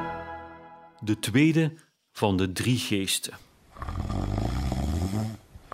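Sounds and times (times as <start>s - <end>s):
speech: 1.1s - 3.9s
man snoring loudly in bed: 3.9s - 5.7s.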